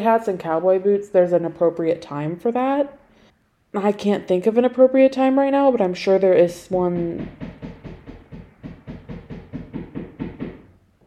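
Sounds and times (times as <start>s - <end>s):
speech: 0.0s - 3.0s, 3.7s - 7.5s
neighbor knocking on a wall: 6.7s - 10.7s.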